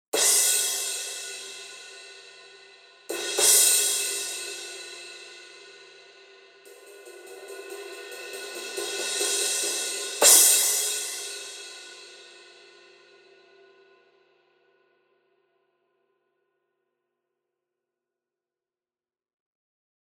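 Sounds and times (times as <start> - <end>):
thin 18 crash cymbal: 0.2 - 13.0.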